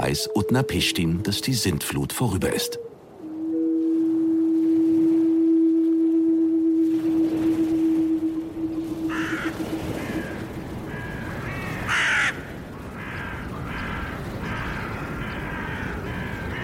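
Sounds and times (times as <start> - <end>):
speech: 0.1 - 2.9
steady droning tone: 2.7 - 11.0
ravens cawing: 9.0 - 16.6.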